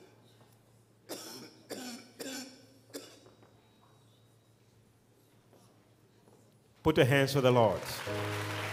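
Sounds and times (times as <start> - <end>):
harsh raspy coughs: 1.1 - 3.4
speech: 6.9 - 8.6.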